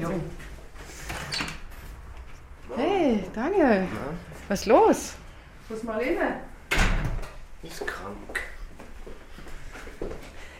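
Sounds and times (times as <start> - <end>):
speech: 0.1 - 0.5, 3.4 - 6.5, 7.6 - 8.5
front door pulled open with scraping and rattle: 6.7 - 7.4.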